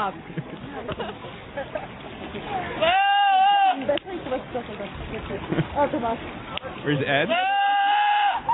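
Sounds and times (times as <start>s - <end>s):
speech: 0.0s - 3.0s, 3.9s - 7.6s
goat bleating: 2.8s - 3.8s, 7.3s - 8.5s.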